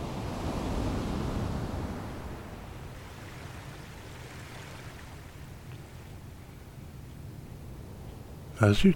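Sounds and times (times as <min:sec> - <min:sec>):
waves breaking on a beach: 0:00.0 - 0:07.0.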